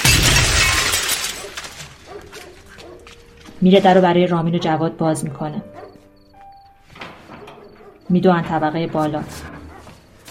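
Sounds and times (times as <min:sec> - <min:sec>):
window glass shattering from a gunshot: 0:00.0 - 0:02.7
speech: 0:03.6 - 0:05.8, 0:08.1 - 0:09.5.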